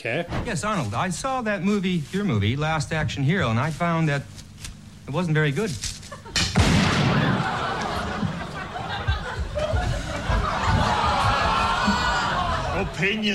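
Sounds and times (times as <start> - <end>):
speech: 0.0 - 4.4, 5.1 - 6.0, 12.8 - 13.3
crowd laughter: 6.1 - 13.3
single loud sharp gunshot: 6.4 - 7.4
lively crowd noise: 7.0 - 13.3.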